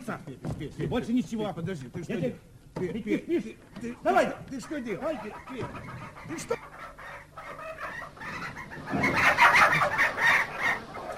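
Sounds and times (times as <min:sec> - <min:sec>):
speech: 0:00.1 - 0:06.7
chickens clucking and squawking: 0:00.8 - 0:11.1.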